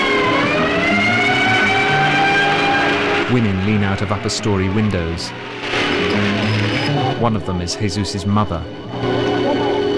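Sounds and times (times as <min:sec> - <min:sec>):
battered ambulance siren wailing on a street: 0:00.0 - 0:07.2
speech: 0:03.3 - 0:06.4, 0:07.2 - 0:09.4.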